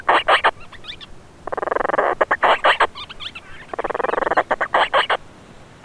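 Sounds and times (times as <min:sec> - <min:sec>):
Madeiran storm petrel chattering calls with harsh purring bursts: 0:00.0 - 0:00.6, 0:01.4 - 0:05.2.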